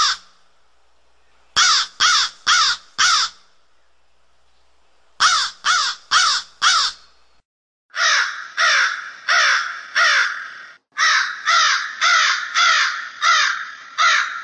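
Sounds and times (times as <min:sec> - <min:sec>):
crow calling with harsh raspy caws: 0:00.0 - 0:00.3, 0:01.6 - 0:03.4, 0:05.2 - 0:07.0, 0:07.9 - 0:14.4.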